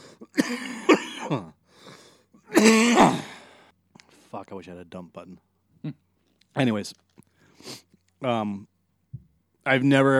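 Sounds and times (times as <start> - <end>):
harsh raspy human coughing: 0.2 - 1.6, 2.5 - 3.4
speech: 0.5 - 1.6, 4.5 - 6.0, 6.6 - 8.7, 9.6 - 10.1.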